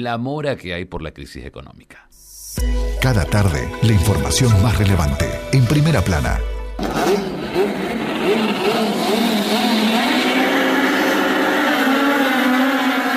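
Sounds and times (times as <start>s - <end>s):
speech: 0.0s - 9.2s
national touring-car race car engines revving and racing: 6.8s - 13.1s.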